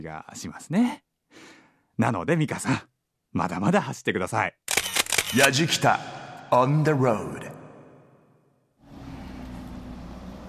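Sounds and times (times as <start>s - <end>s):
speech: 0.0s - 4.6s, 5.3s - 7.5s
road traffic roar on a city street: 8.9s - 10.4s.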